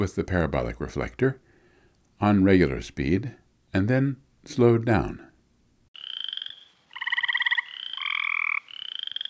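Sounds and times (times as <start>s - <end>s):
speech: 0.0s - 1.5s, 2.2s - 5.3s
small frogs calling in a pond: 6.0s - 9.2s.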